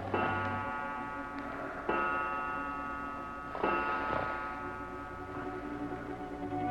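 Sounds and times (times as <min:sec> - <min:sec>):
resonant clock chime tones: 0:00.1 - 0:06.6.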